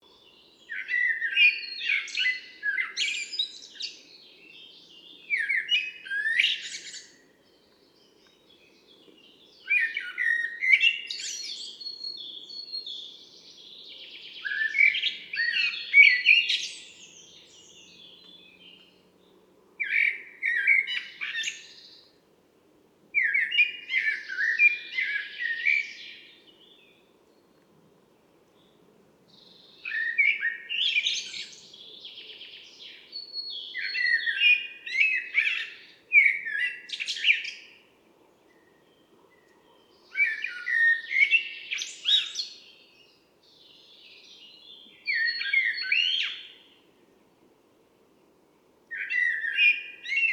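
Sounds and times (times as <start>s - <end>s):
common blackbird Turdus merula: 0.0s - 22.2s, 23.2s - 27.7s, 28.6s - 46.9s, 48.9s - 50.3s.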